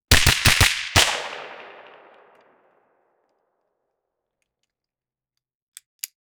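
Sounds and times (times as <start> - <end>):
9mm gunshot: 0.1 - 2.6.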